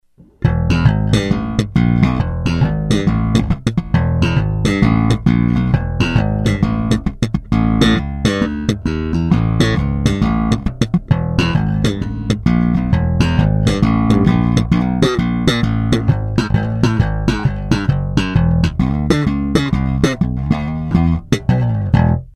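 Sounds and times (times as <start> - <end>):
Fender Badass slap bass: 0.0 - 22.3.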